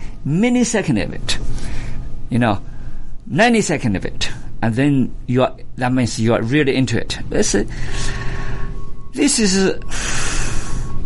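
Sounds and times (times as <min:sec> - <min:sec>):
speech: 0:00.2 - 0:02.7, 0:03.3 - 0:08.3, 0:09.2 - 0:10.2
slow deliberate breathing exercise: 0:01.5 - 0:03.2, 0:07.7 - 0:09.0, 0:09.9 - 0:11.0.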